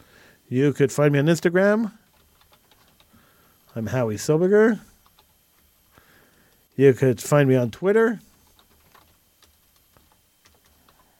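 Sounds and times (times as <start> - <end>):
speech: 0.5 - 2.0, 3.8 - 4.9, 6.8 - 8.3
soft irregular typing on a computer keyboard: 2.0 - 3.8, 5.0 - 5.4, 8.3 - 11.1.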